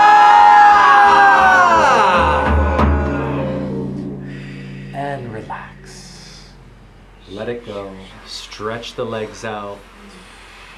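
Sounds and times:
group of people yelling: 0.0 - 3.9
speech: 8.6 - 10.3.

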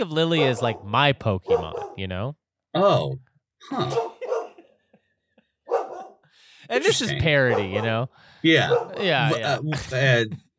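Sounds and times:
speech: 0.0 - 4.1, 6.7 - 10.4
dog barking: 0.3 - 2.0, 3.8 - 4.7, 5.7 - 6.2, 7.4 - 8.0, 8.6 - 9.1.

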